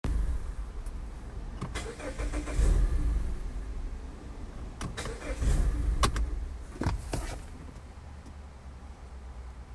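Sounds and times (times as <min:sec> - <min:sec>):
Mazda CX-5 engine stalling: 0:01.5 - 0:03.8, 0:04.8 - 0:07.7.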